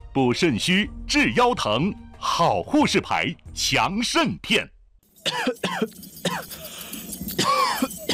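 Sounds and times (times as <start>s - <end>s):
speech: 0.2s - 7.9s
harsh wet coughs: 5.2s - 8.1s.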